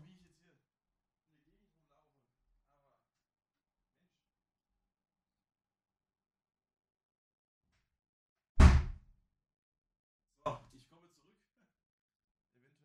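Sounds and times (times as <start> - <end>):
door shutting with a solid booming thud: 8.6 - 9.0.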